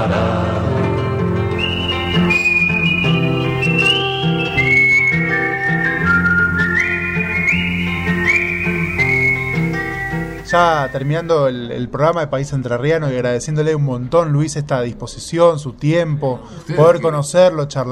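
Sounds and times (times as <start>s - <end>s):
instrumental accompaniment: 0.9s - 11.2s
whistled melody: 1.5s - 11.3s
speech: 10.5s - 17.9s.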